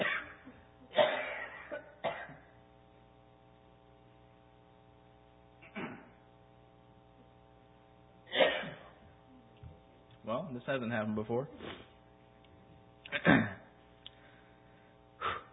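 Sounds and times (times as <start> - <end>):
person coughing: 0.0 - 2.5, 5.6 - 6.2, 8.3 - 9.0, 13.1 - 13.7
steady low electrical hum: 0.0 - 15.5
speech: 10.3 - 11.8.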